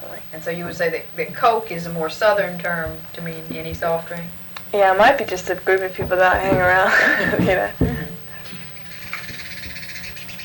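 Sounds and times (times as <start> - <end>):
speech: 0.3 - 8.0
laughter: 6.1 - 9.7
bird calling outside: 8.1 - 10.4.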